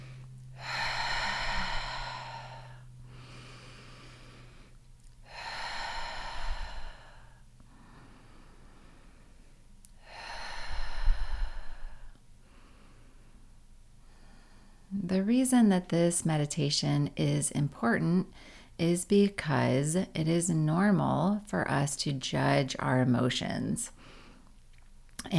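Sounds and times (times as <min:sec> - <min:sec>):
slow breathing in through the nose and out through the mouth: 0:00.0 - 0:15.0, 0:18.3 - 0:18.8, 0:24.0 - 0:24.6
faint steady hum: 0:00.0 - 0:25.3
speech: 0:15.2 - 0:24.2.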